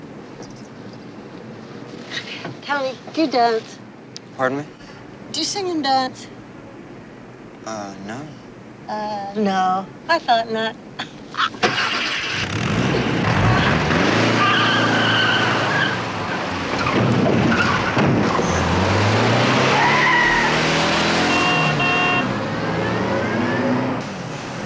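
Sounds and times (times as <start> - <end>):
speech: 2.2 - 3.8, 4.4 - 6.4, 7.6 - 11.6
car engine revving: 11.6 - 24.1
car tires squealing and skidding: 12.0 - 22.0.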